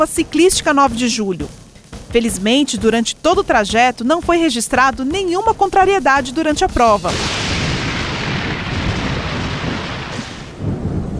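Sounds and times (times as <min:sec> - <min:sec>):
speech: 0:00.0 - 0:07.4
deep rolling thunder during a bicycle race in São Paulo: 0:07.0 - 0:11.1
dense rain during a bicycle race in São Paulo: 0:07.0 - 0:11.1.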